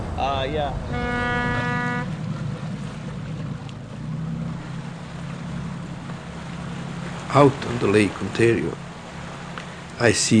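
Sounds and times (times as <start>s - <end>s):
wind noise: 0.0s - 3.7s
tour boat engine rumble departing from dock: 0.0s - 10.3s
water noise: 0.0s - 10.3s
speech: 0.2s - 1.6s, 7.3s - 8.8s, 10.0s - 10.3s
tour boat horn blast: 0.5s - 5.3s.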